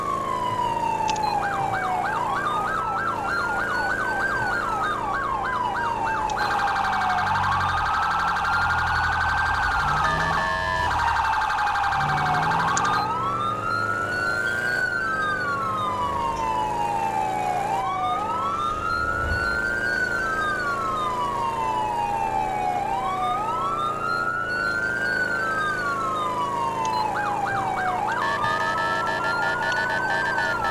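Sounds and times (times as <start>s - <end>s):
fire engine siren responding to a brush fire on a highway: 0.0s - 30.6s.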